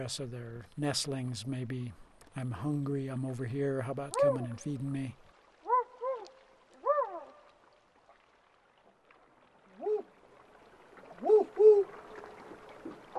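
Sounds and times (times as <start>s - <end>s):
speech: 0.0s - 5.2s
spotted owl hooting: 9.8s - 10.1s, 11.2s - 11.9s.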